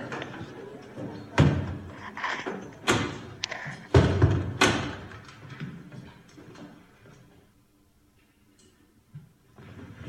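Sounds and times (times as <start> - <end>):
several doors slamming shut: 0.1 - 5.8.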